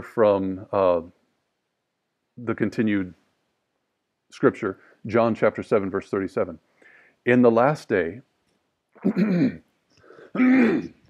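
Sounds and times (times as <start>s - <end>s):
speech: 0.0s - 1.2s, 2.4s - 3.2s, 4.3s - 8.3s, 9.0s - 9.6s, 10.3s - 11.0s
throat clearing during a scripture reading: 9.0s - 9.6s, 10.3s - 11.0s.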